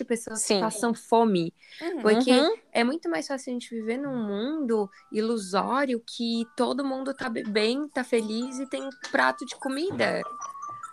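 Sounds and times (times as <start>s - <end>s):
speech: 0.0s - 10.9s
mobile phone reminder alert tone for drinking water: 8.2s - 10.9s.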